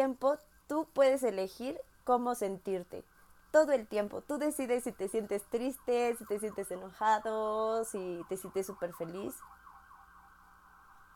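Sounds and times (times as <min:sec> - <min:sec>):
speech: 0:00.0 - 0:09.6
ambulance siren wailing outside: 0:05.2 - 0:11.1.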